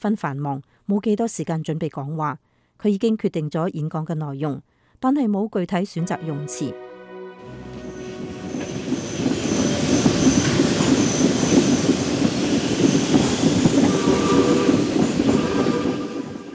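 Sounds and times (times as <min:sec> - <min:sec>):
speech: 0:00.0 - 0:06.8
train rolling along the tracks: 0:07.4 - 0:16.5
faint metallic train squeals: 0:07.8 - 0:16.4.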